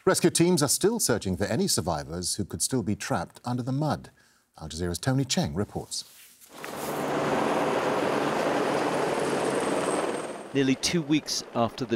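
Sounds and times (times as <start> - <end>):
speech: 0.0 - 6.7, 10.5 - 11.9
helicopter rotor hovering in wind: 6.6 - 11.9.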